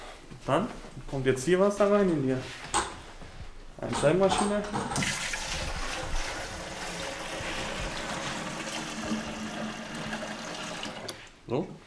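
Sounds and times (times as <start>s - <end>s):
speech: 0.5s - 2.7s, 3.8s - 5.3s, 11.5s - 11.8s
clean water pouring into plastic tank of a carpet cleaning machine: 5.0s - 11.2s.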